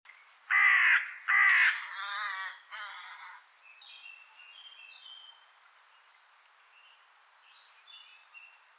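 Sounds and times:
carrion crow Corvus corone giving harsh rasping caws: 0.5s - 3.4s.

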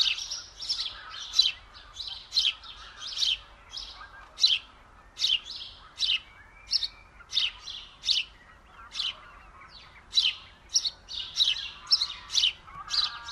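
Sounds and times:
faint lower twittering: 0.0s - 13.2s
house sparrow Passer domesticus chirping: 0.0s - 13.2s.

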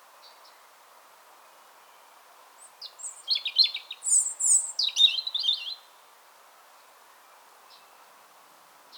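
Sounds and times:
faint steady background hiss: 0.0s - 8.9s
European robin Erithacus rubecula song: 1.8s - 5.9s, 7.2s - 8.1s.

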